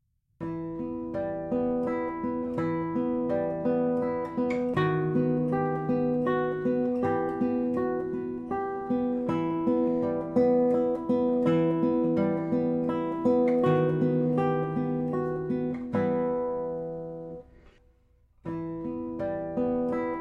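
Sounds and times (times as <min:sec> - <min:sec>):
solo guitar waltz: 0:00.4 - 0:20.2.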